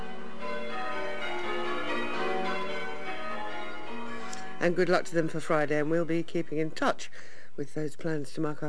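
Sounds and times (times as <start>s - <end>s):
church bells ringing changes in a steady peal: 0.0s - 6.7s
speech: 4.6s - 8.6s.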